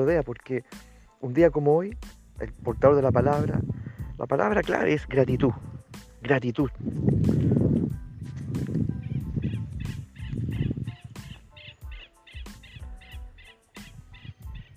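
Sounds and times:
speech: 0.0 - 7.6
birds singing and calling: 7.4 - 14.7.

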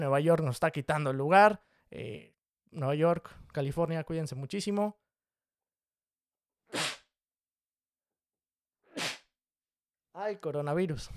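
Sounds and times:
speech: 0.0 - 5.0, 10.2 - 11.1
person sneezing: 6.7 - 7.1, 8.9 - 9.3.

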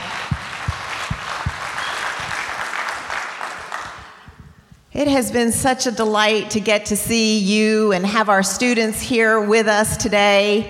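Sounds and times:
crowd applause at a church event: 0.0 - 4.3
speech: 5.0 - 10.6.

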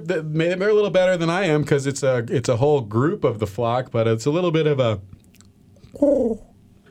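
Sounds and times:
speech: 0.0 - 5.2, 6.0 - 6.5
voice imitating a low throaty pigeon coo: 5.8 - 6.5.

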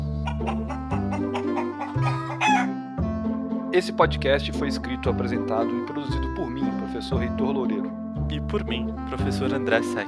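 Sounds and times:
chickens clucking: 0.0 - 2.8
musical backing with sustained low notes: 0.0 - 10.0
rooster crowing: 0.3 - 2.8
speech: 3.8 - 10.0.

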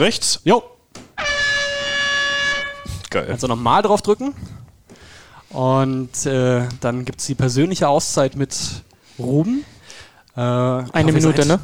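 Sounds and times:
speech: 0.0 - 0.7, 3.1 - 4.6, 5.5 - 9.8, 10.4 - 11.6
air horn blast signalling a technical time-out: 1.2 - 3.3.

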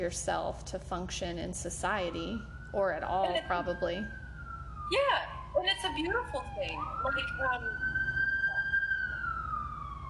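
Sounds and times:
speech: 0.0 - 4.2, 4.9 - 8.0
emergency vehicle siren wailing downtown: 2.0 - 10.0.

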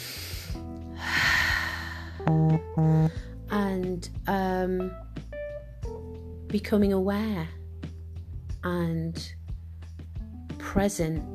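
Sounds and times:
deep inhale through the nose for a breathing exercise: 0.0 - 2.2
speech: 2.2 - 5.1, 6.5 - 7.6, 8.6 - 9.4, 10.8 - 11.3.

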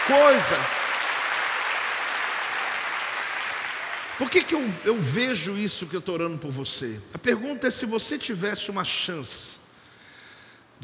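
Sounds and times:
large crowd applauding: 0.0 - 4.9
speech: 0.1 - 0.8, 4.2 - 9.6.

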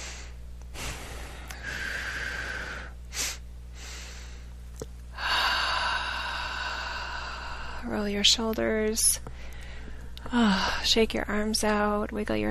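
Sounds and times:
slow deep breathing during a guided relaxation exercise: 0.0 - 8.0, 9.3 - 10.9
speech: 7.9 - 9.5, 10.3 - 12.4.

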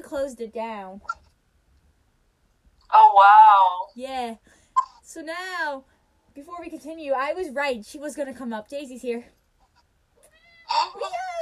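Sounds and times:
speech: 0.1 - 1.2, 2.9 - 9.4
cat meowing: 10.2 - 11.3.

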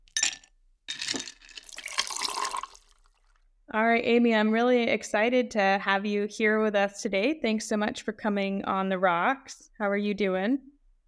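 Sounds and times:
glass clinking: 0.1 - 2.9
liquid pouring into a glass: 0.2 - 3.4
speech: 3.7 - 10.7.

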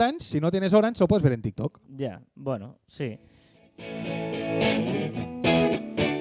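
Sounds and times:
speech: 0.0 - 5.3
pop song with a driving beat and slightly distorted guitars: 3.7 - 6.1.

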